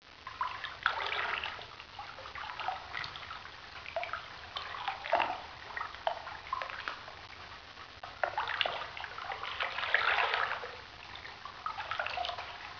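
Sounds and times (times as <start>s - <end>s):
water lapping: 0.3s - 12.7s.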